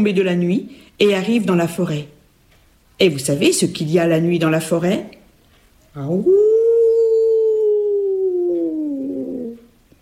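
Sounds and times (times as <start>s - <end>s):
speech: 0.0s - 2.2s, 3.0s - 5.2s, 6.0s - 6.5s
wolf howling: 6.2s - 9.8s.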